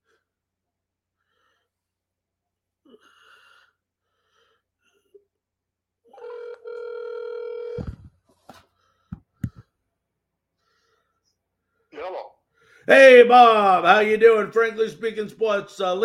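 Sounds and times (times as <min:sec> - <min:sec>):
steady ringing tone on a phone hotline line: 0:06.1 - 0:08.1
speech: 0:12.9 - 0:16.0.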